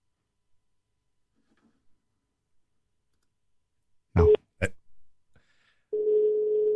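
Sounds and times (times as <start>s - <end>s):
ringing tone on an outgoing telephone call: 6.0s - 6.7s.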